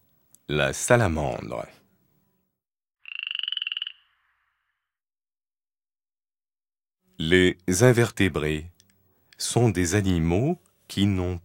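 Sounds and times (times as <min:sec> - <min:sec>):
speech: 0:00.5 - 0:01.8, 0:07.2 - 0:08.7, 0:09.4 - 0:11.4
frog croaking in a rattling trill: 0:03.0 - 0:05.0.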